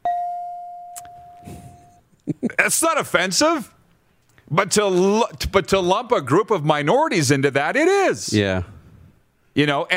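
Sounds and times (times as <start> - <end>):
bell ding: 0.0 - 2.0
speech: 2.3 - 3.8, 4.5 - 8.7, 9.6 - 9.9.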